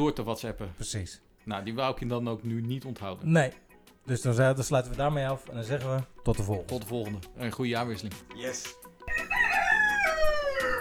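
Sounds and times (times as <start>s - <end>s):
speech: 0.0s - 8.8s
rooster crowing strained and wavering: 9.1s - 10.7s.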